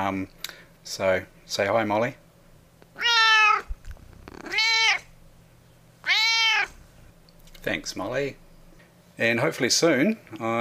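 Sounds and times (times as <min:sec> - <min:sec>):
speech: 0:00.0 - 0:02.2, 0:07.6 - 0:08.4, 0:09.2 - 0:10.5
faint steady hum: 0:00.0 - 0:10.5
cat meowing: 0:03.0 - 0:05.1, 0:06.0 - 0:06.8.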